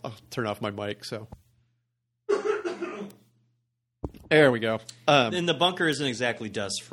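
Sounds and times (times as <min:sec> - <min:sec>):
speech: 0:00.0 - 0:01.4, 0:04.3 - 0:06.9
person coughing to clear their throat in a dusty old basement: 0:02.3 - 0:03.3.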